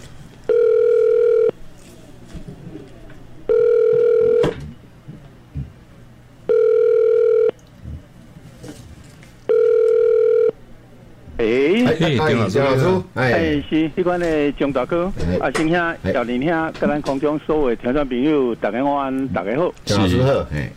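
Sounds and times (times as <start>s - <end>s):
faint hum: 0.0s - 20.7s
telephone line tone beeps as a call waits to connect: 0.5s - 1.6s, 3.5s - 4.6s, 6.5s - 7.6s, 9.5s - 10.6s.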